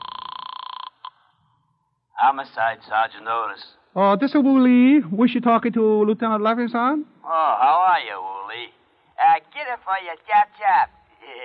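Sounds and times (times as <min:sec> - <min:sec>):
telephone ringing with a bright trilling bell: 0:00.0 - 0:01.3
speech: 0:02.2 - 0:08.7, 0:09.6 - 0:11.0.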